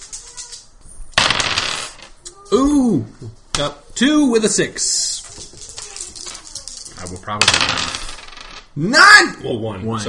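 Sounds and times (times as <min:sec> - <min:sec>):
four dice rolled during a tabletop role-playing game: 0:01.2 - 0:02.1, 0:05.2 - 0:08.7
speech: 0:02.5 - 0:05.1, 0:07.1 - 0:08.0, 0:08.8 - 0:10.0.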